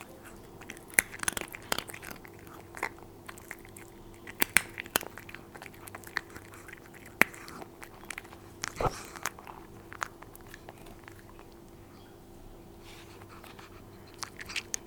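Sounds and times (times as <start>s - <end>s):
cat eating: 0.0s - 14.8s.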